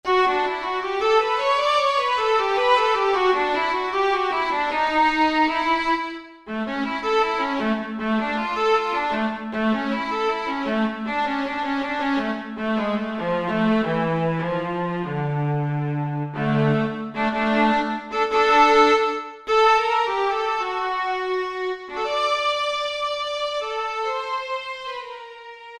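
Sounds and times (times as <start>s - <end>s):
viola playing in stereo: 0.0s - 25.7s.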